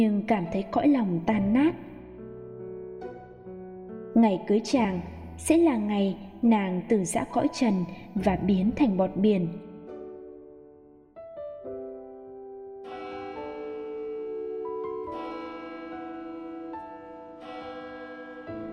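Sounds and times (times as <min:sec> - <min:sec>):
speech: 0:00.0 - 0:01.9, 0:04.2 - 0:09.7
church bells ringing: 0:12.8 - 0:18.7.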